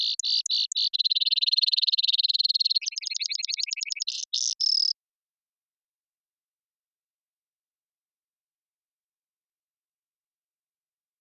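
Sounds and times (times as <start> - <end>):
Brewer's sparrow males singing buzzy trills in a subalpine sagebrush meadow: 0.0 - 4.9.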